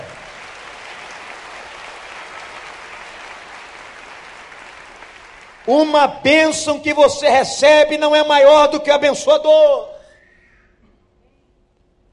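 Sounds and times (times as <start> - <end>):
audience applauding: 0.0 - 6.2
speech: 5.7 - 10.0.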